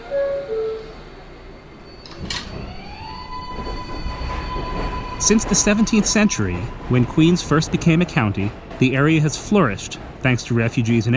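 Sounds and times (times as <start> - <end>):
subway train electric motor whine and rumble pulling away: 0.0 - 11.1
subway train two-tone door chime: 1.7 - 5.2
speech: 5.2 - 11.1.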